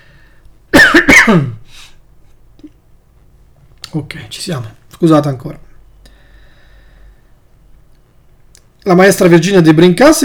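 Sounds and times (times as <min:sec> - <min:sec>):
faint breath: 0:00.0 - 0:00.6, 0:01.6 - 0:02.0, 0:06.0 - 0:07.5
person coughing: 0:00.7 - 0:01.8
rough voiced throat clearing: 0:00.8 - 0:01.8
speech: 0:01.3 - 0:01.6, 0:03.9 - 0:05.7, 0:08.8 - 0:10.2.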